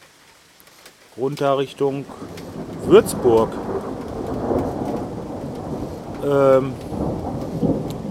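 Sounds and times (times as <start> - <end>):
steady rain: 0.0 - 8.0
speech: 1.2 - 3.9, 6.2 - 7.7
thunder rumbling during a thunderstorm: 1.6 - 8.0.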